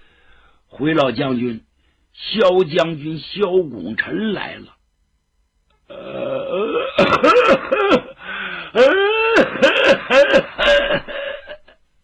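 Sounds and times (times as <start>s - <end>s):
speech: 0.7s - 4.8s, 7.0s - 8.0s
storyteller imitating an old general coughing: 6.6s - 8.2s, 8.8s - 11.6s.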